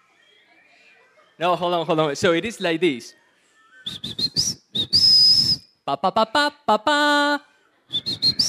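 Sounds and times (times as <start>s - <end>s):
speech: 1.4s - 3.2s, 5.9s - 8.2s
whistle blasts: 3.9s - 5.7s, 7.9s - 8.4s.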